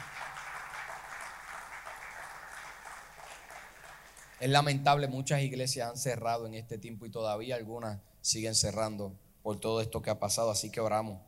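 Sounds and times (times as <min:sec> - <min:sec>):
crowd clapping as thanks to God: 0:00.0 - 0:04.8
speech: 0:04.4 - 0:11.2.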